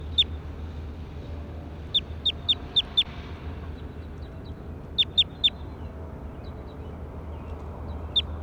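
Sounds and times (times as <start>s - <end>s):
steady low hum: 0.0s - 8.3s
bird calls of sharp high chirps with downward sweeps: 2.0s - 3.0s, 5.0s - 5.6s.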